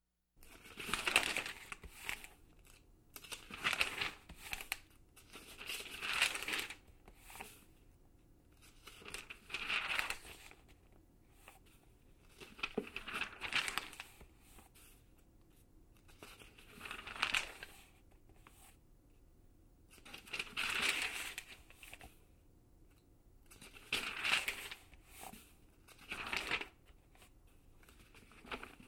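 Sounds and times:
pages being turned: 0.5 - 7.6, 8.6 - 10.6, 12.3 - 14.3, 16.0 - 17.9, 20.0 - 22.1, 23.5 - 28.8.

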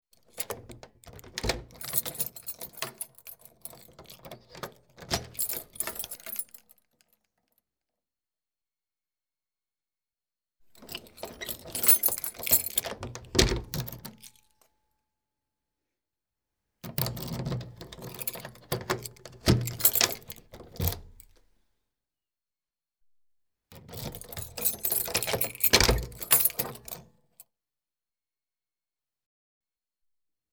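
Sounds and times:
keys in a lock: 0.2 - 7.4, 10.7 - 14.7, 16.8 - 21.5, 23.7 - 27.4.

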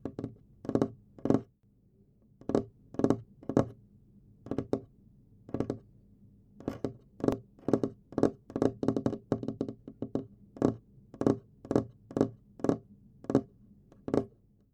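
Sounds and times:
fingers tapping on a table: 0.0 - 1.5, 2.4 - 3.8, 4.4 - 4.9, 5.5 - 5.8, 6.6 - 14.4.

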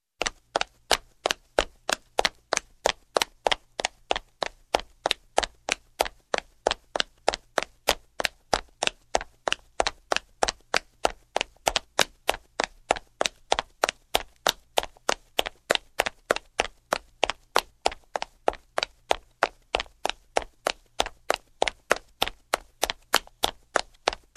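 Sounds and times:
woman running: 0.2 - 24.3.

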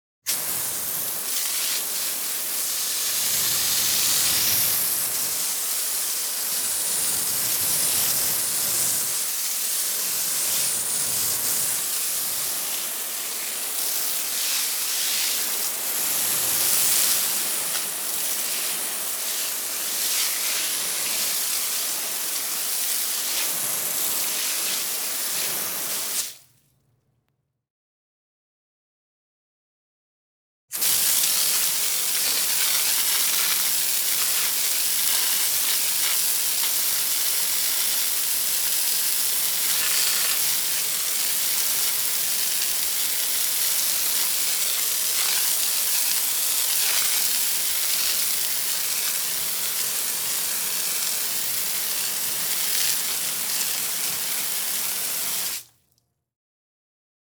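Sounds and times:
hose watering a garden: 0.3 - 26.4, 30.7 - 55.8.

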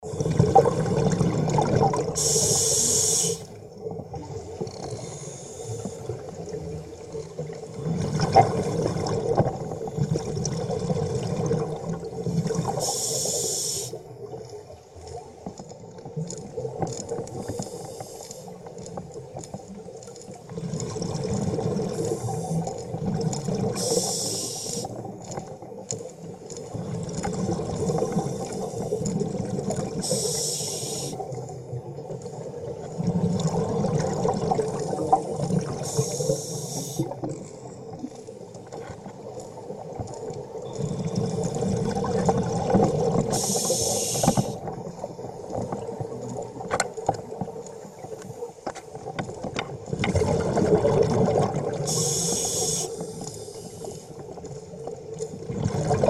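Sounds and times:
scuba diver submerging with an aqualung: 0.0 - 14.5, 15.2 - 48.1, 48.8 - 56.0.

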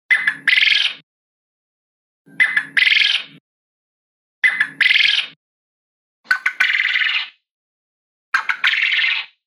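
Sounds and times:
quail: 2.3 - 3.4, 4.4 - 5.4, 6.3 - 7.4, 8.4 - 9.3.

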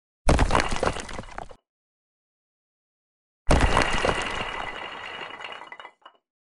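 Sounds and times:
bricks: 0.3 - 1.6, 3.5 - 6.2.

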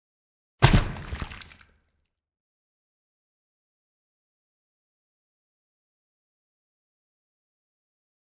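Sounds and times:
heavy object falling into water: 0.6 - 1.6.

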